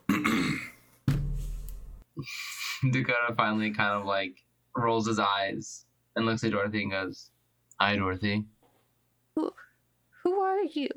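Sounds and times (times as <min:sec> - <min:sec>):
woman clearing her throat: 0:00.0 - 0:00.8
speech: 0:02.2 - 0:08.6, 0:09.4 - 0:09.7, 0:10.3 - 0:10.9.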